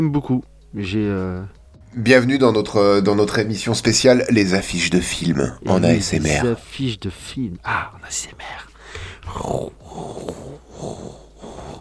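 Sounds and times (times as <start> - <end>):
speech: 0.0 - 11.2
person imitating cat purring: 9.3 - 11.8.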